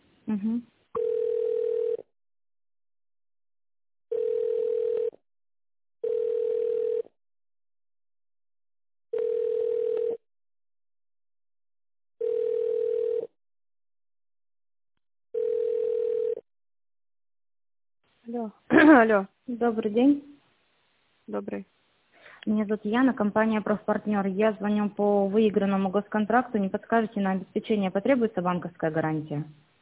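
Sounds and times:
speech: 0.3s - 0.8s, 19.0s - 20.3s, 21.3s - 21.8s, 22.4s - 29.7s
telephone ringback tone while a call is transferred: 1.0s - 2.1s, 4.1s - 5.2s, 6.0s - 7.1s, 9.1s - 10.2s, 12.2s - 13.3s, 15.4s - 16.4s.

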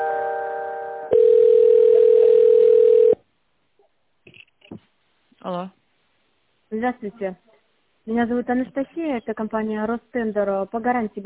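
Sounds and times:
telephone line tones during business call transfer: 0.0s - 3.2s
loud single sustained telephone beep: 1.1s - 3.2s
speech: 6.8s - 11.2s.

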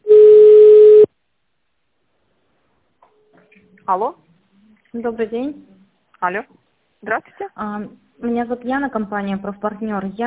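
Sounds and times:
telephone ringback tone while a call is transferred: 0.1s - 1.1s
speech: 3.9s - 4.3s, 4.9s - 10.2s.

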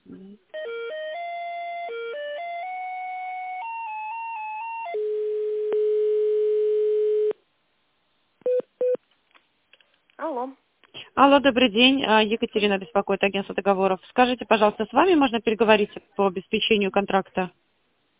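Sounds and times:
electronic telephone line tones during call transfer: 0.6s - 7.4s
speech: 11.2s - 17.6s.

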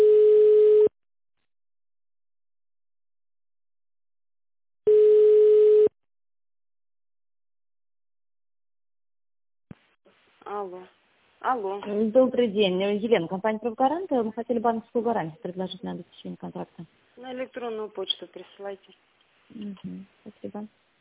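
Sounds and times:
telephone call-forwarding tone beeps: 0.0s - 0.9s, 4.9s - 5.9s
speech: 10.4s - 20.8s.

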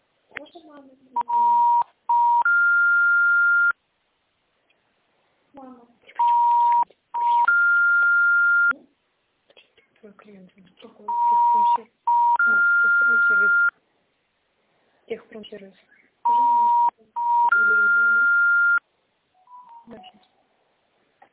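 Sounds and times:
person talking: 0.3s - 1.8s, 5.5s - 7.0s, 8.7s - 13.7s, 15.1s - 18.3s, 19.7s - 20.3s
telephone dialing beeps while a call is placed: 1.2s - 3.8s, 6.2s - 8.7s, 11.1s - 13.7s, 16.3s - 18.8s, 19.4s - 19.9s.

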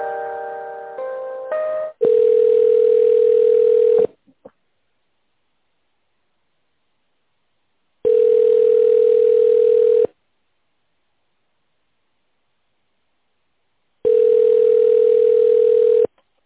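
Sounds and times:
telephone dialing tones during office call transfer: 2.0s - 4.1s, 8.1s - 10.1s, 14.1s - 16.1s.

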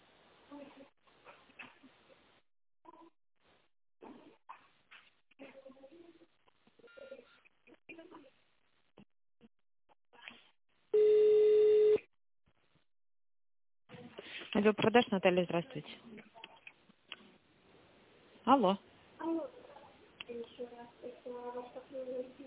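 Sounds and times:
telephone keypad tone dialing an extension number: 11.0s - 12.0s
speech: 14.6s - 16.2s, 18.5s - 18.9s.

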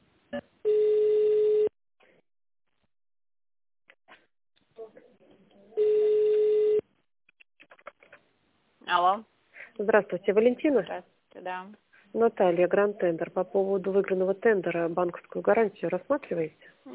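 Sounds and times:
telephone ringing tone during a call transfer: 0.7s - 1.7s, 5.8s - 6.8s
speech: 9.8s - 16.9s.

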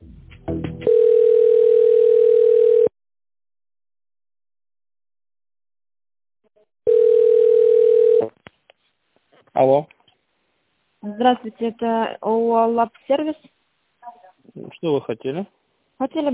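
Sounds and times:
steady single-pitched telephone line tone while a call is transferred: 0.9s - 2.9s, 6.9s - 8.3s
speech: 9.6s - 10.0s, 11.2s - 13.6s, 14.6s - 16.3s.

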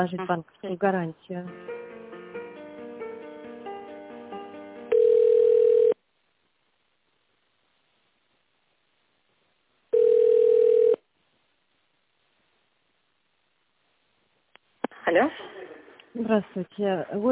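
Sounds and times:
speech: 0.0s - 1.8s, 15.1s - 15.6s, 16.2s - 17.2s
telephone line beeps while a business call is transferred: 4.9s - 6.0s, 10.0s - 11.0s.

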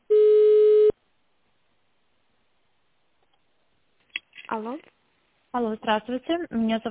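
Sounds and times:
steady mid-pitched telephone beep tone during call transfer: 0.1s - 0.9s
speech: 5.9s - 6.9s.

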